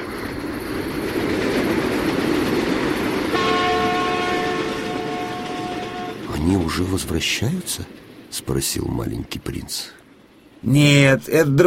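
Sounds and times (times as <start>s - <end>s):
fast express train roaring by: 0.0s - 11.6s
train horn blaring: 3.3s - 6.3s
speech: 6.7s - 10.0s, 10.6s - 11.6s.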